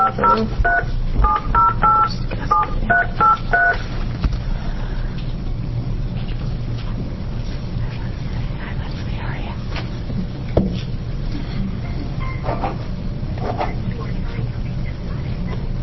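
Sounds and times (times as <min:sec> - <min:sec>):
touch-tone beeps of a telephone number being redialed: 0:00.0 - 0:03.8
steady low rumble of noise: 0:00.0 - 0:15.8.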